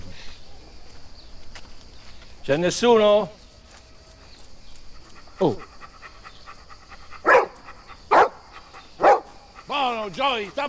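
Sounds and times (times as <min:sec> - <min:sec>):
speech: 0:02.4 - 0:03.4, 0:05.4 - 0:05.6, 0:10.4 - 0:10.6
dog barking: 0:05.4 - 0:10.6.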